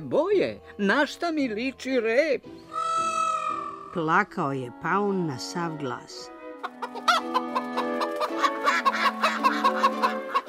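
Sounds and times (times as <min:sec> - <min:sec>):
speech: 0:00.1 - 0:02.6, 0:03.9 - 0:06.3
rooster and hens clucking: 0:06.6 - 0:10.4.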